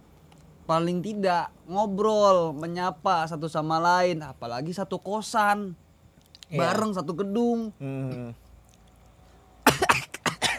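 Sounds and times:
speech: 0.7s - 5.8s, 6.5s - 8.4s
person coughing harshly after eating spicy chips: 9.6s - 10.5s.

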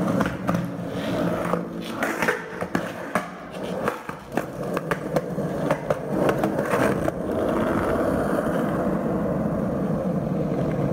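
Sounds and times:
sharp clacks and skateboard snaps: 0.0s - 8.0s
skateboard wheels rolling over pavement: 0.0s - 10.9s.

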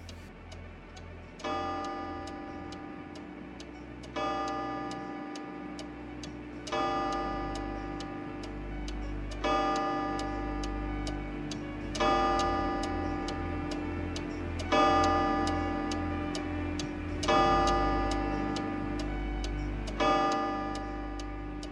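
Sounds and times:
mantel clock ticking: 0.0s - 21.7s
soft tonal swell: 0.0s - 21.7s.

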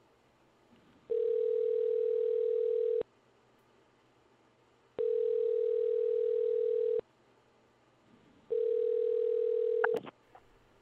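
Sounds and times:
phone line ringing tone on an outgoing call: 1.1s - 3.0s, 5.0s - 7.0s, 8.5s - 10.0s.

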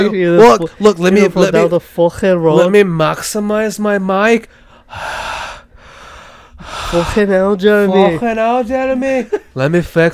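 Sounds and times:
speech: 0.0s - 5.5s, 6.6s - 10.1s
heavy rasping breathing while eating pizza: 4.5s - 7.4s.

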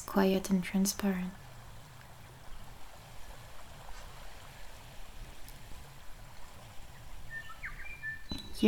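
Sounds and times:
lake water lapping against a grassy shore: 0.0s - 8.6s
speech: 0.1s - 1.4s
bird chirp: 6.9s - 8.6s.

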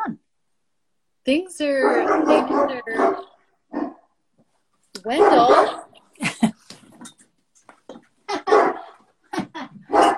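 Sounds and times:
speech: 1.3s - 3.3s, 5.0s - 5.8s
dog barking: 1.8s - 4.1s, 5.1s - 5.9s, 8.3s - 9.0s, 9.9s - 10.1s.

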